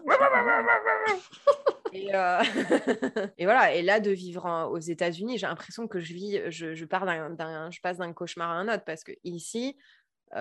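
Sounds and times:
dog long drawn-out whining howl: 0:00.0 - 0:01.2
speech: 0:00.6 - 0:10.3
laughter: 0:01.2 - 0:03.3.

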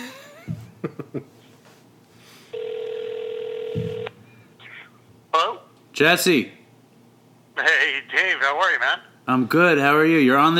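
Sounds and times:
speech: 0:00.9 - 0:01.3, 0:06.0 - 0:06.6, 0:08.1 - 0:10.5
outgoing phone call ring tone: 0:02.5 - 0:04.6.

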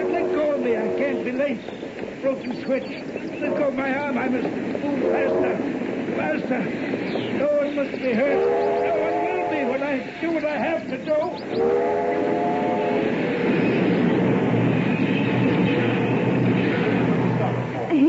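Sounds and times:
train horn blasts: 0:00.0 - 0:01.4, 0:03.4 - 0:03.9, 0:05.0 - 0:05.6, 0:08.2 - 0:10.0, 0:11.5 - 0:13.5
passing train wheels rumbling and clattering on rails: 0:00.0 - 0:18.0
speech: 0:01.4 - 0:09.2, 0:09.9 - 0:12.5.

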